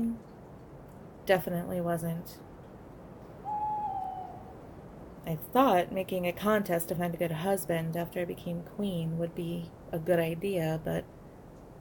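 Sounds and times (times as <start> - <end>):
low hiss: 0.0 - 11.7
speech: 1.3 - 2.5, 5.2 - 11.2
owl hooting: 3.4 - 4.7.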